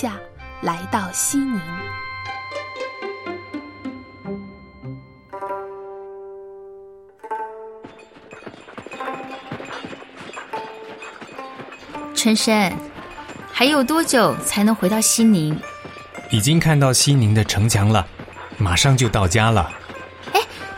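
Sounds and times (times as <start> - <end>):
speech: 0.0 - 2.0, 12.2 - 12.9, 13.6 - 15.7, 16.3 - 19.8
sustained melodic music: 0.0 - 20.7
donkey hooves clip-clopping on a road while carrying a sedan chair: 7.3 - 20.7.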